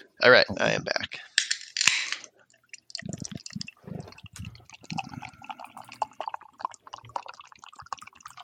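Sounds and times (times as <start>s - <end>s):
speech: 0.2s - 1.2s
drink being poured: 2.4s - 8.4s.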